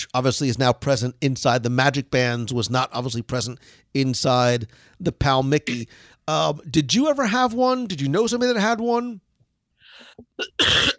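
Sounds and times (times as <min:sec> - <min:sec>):
speech: 0:00.0 - 0:09.2, 0:10.0 - 0:10.9
stifled cough: 0:05.7 - 0:05.9, 0:10.4 - 0:10.9.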